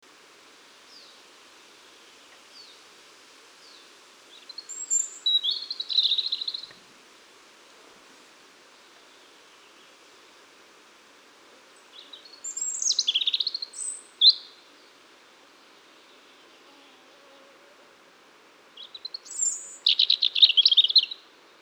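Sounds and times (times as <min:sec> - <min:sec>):
Erithacus rubecula singing: 0:04.5 - 0:06.7, 0:11.9 - 0:14.6, 0:18.8 - 0:21.2.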